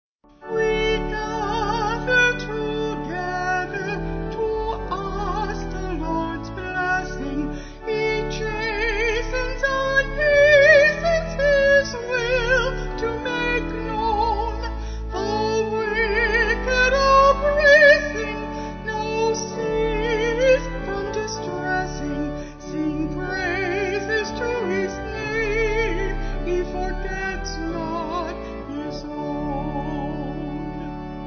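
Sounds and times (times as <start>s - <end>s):
organ playing: 0.3s - 31.2s
person singing a hymn: 0.4s - 31.2s.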